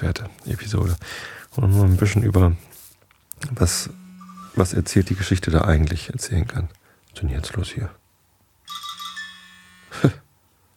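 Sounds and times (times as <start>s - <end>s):
speech: 0.0s - 2.8s, 3.4s - 4.0s, 4.6s - 8.0s, 10.0s - 10.2s
mobile phone ringing with a bright electronic melody: 3.7s - 5.3s, 8.7s - 10.1s.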